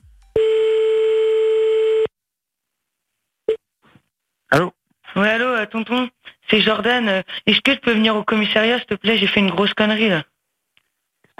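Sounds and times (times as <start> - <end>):
telephone tone while placing a call: 0.0 - 2.1
speech: 4.5 - 10.3.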